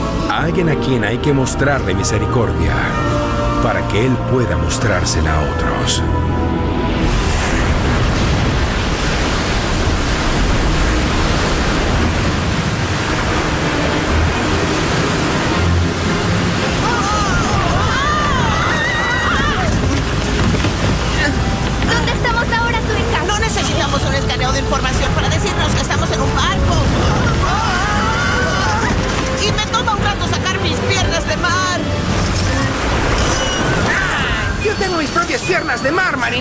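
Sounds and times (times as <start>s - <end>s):
stormy sea waves crashing around a boat: 0.0s - 36.3s
speech: 0.4s - 6.4s
indistinct shouting voices: 16.8s - 19.8s, 26.8s - 29.1s.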